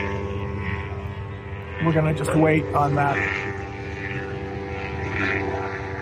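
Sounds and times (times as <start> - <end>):
police helicopter flying overhead: 0.0 - 5.9
speech: 1.8 - 3.6.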